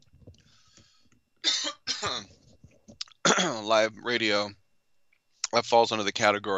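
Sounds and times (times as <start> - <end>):
harsh coughs from a radio host on live air: 1.4 - 2.4, 3.2 - 3.6
speech: 3.6 - 4.6, 5.5 - 6.5.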